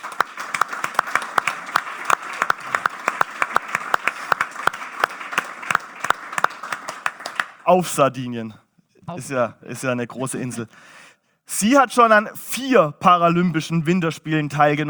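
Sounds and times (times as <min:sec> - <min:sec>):
audience applause: 0:00.0 - 0:08.0
speech: 0:07.7 - 0:14.8.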